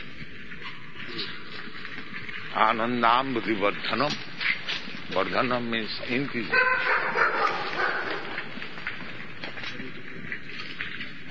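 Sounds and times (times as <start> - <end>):
steady outdoor hiss: 0.0 - 11.3
speech: 2.6 - 4.3, 5.1 - 7.8
stray dogs barking: 6.3 - 9.2.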